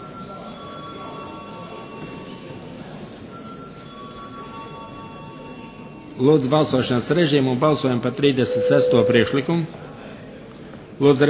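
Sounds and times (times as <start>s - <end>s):
speech: 6.2s - 9.8s, 11.0s - 11.2s
electric parliament voting bell ringing before a vote: 8.5s - 9.4s.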